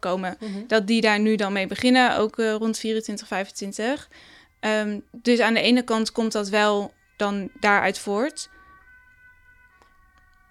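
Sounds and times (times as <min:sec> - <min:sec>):
speech: 0:00.0 - 0:08.6
ambulance siren wailing: 0:03.8 - 0:10.4.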